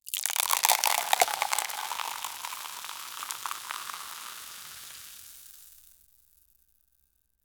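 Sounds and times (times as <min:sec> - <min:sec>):
soda fountain filling: 0:00.1 - 0:05.5.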